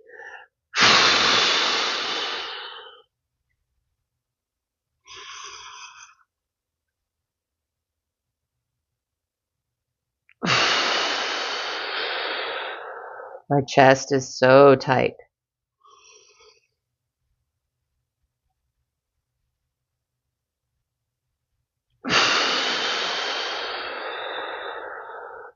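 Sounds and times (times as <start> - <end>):
deep breaths: 0.0 - 3.1, 5.0 - 6.3, 10.4 - 13.5, 15.8 - 16.8, 22.0 - 25.5
speech: 13.5 - 15.2.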